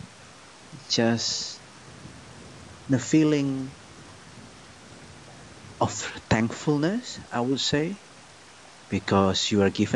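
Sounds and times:
heavy rain on a roof: 0:00.0 - 0:00.8, 0:01.6 - 0:07.0
speech: 0:00.9 - 0:01.6, 0:02.9 - 0:03.8, 0:05.8 - 0:08.1, 0:08.9 - 0:09.9.

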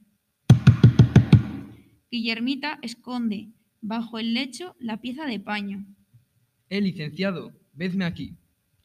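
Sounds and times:
heavy knocking on a door: 0:00.5 - 0:01.7
speech: 0:02.1 - 0:06.0, 0:06.7 - 0:08.4.

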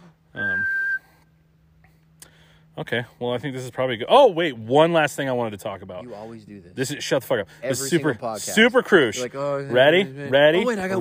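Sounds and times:
high-pitched whistle: 0:00.3 - 0:01.3
speech: 0:02.8 - 0:11.0.

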